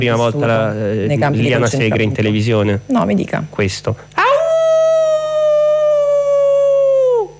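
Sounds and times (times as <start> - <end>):
speech: 0.0 - 4.2
person howling like a dog or wolf: 4.2 - 7.3.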